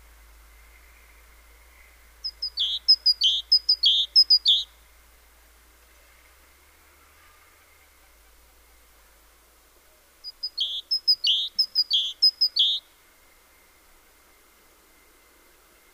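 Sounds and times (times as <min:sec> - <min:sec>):
great tit Parus major singing ringing two-note phrases: 0:02.2 - 0:04.7, 0:10.2 - 0:12.9.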